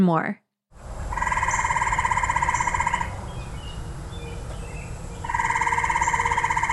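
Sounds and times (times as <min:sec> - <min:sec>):
speech: 0:00.0 - 0:00.4
steady hiss of night ambience: 0:00.8 - 0:06.7
gray tree frog trilling: 0:01.1 - 0:03.3, 0:05.2 - 0:06.7.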